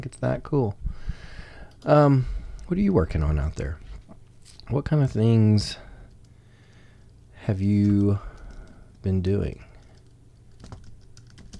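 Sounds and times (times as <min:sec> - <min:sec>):
speech: 0:00.0 - 0:01.2, 0:01.8 - 0:03.8, 0:04.7 - 0:05.9, 0:07.4 - 0:08.3, 0:09.0 - 0:09.7
low steady hum: 0:00.0 - 0:11.5
computer keyboard typing: 0:07.6 - 0:09.1, 0:09.7 - 0:11.5.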